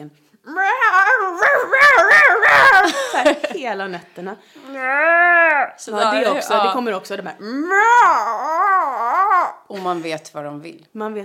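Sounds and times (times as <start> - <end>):
speech: 0.0 - 0.7, 3.6 - 8.7, 9.7 - 11.2
person imitating a cat in heat yowling: 0.4 - 2.9, 4.6 - 6.5, 7.4 - 9.7.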